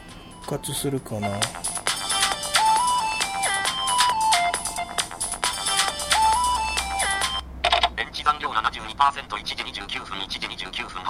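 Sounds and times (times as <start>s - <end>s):
speech: 0.5s - 1.7s, 9.0s - 11.0s
smartphone ringtone for an incoming call: 1.2s - 7.9s.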